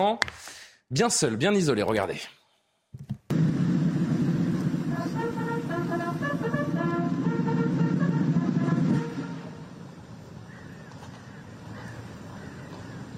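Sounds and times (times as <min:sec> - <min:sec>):
speech: 0:00.0 - 0:02.4
steady low rumble of engines: 0:03.3 - 0:13.1
brass fanfare of trumpets playing ceremonial phrases outdoors: 0:04.6 - 0:09.9.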